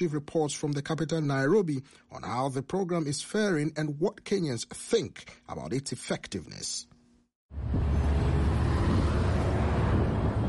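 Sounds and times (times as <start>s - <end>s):
speech: 0.0s - 6.9s
slow-moving street traffic in a suburb of Nairobi Kenya: 7.5s - 10.4s.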